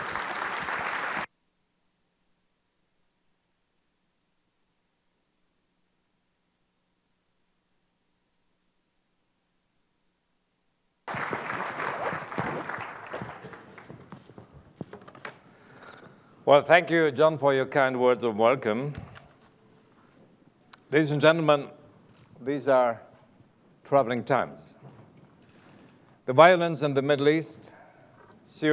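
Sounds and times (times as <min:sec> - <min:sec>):
large audience applauding to welcome a speaker: 0:00.0 - 0:01.3, 0:11.1 - 0:14.6
speech: 0:16.5 - 0:19.1, 0:20.9 - 0:21.8, 0:22.4 - 0:23.1, 0:23.9 - 0:24.8, 0:26.3 - 0:27.8, 0:28.5 - 0:28.7.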